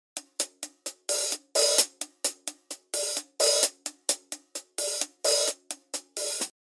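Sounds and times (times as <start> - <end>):
drum hi-hat hit hard: 0.2 - 6.5.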